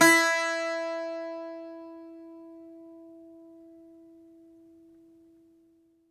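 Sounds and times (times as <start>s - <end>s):
Greek bouzouki plucked strings: 0.0s - 4.3s.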